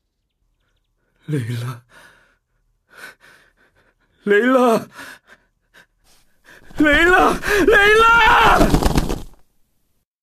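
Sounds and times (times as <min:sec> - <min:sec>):
speech: 0:01.3 - 0:02.1, 0:04.2 - 0:05.2, 0:06.8 - 0:08.8
startled birds flapping up into flight: 0:06.7 - 0:09.4.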